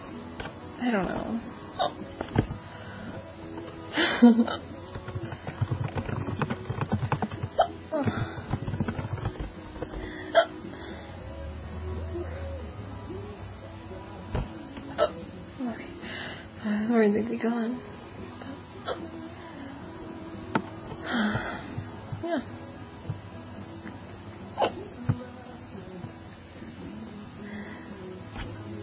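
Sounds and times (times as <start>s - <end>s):
faint vocal sounds: 0.0s - 28.8s
speech: 0.8s - 2.4s, 3.9s - 4.7s, 17.0s - 17.9s
hiccups: 1.8s - 2.0s, 7.6s - 7.8s, 14.9s - 15.2s, 18.8s - 19.1s, 24.6s - 24.9s
soft breathing: 2.6s - 3.4s, 9.8s - 11.5s, 15.9s - 16.9s, 21.0s - 22.1s, 27.4s - 28.2s.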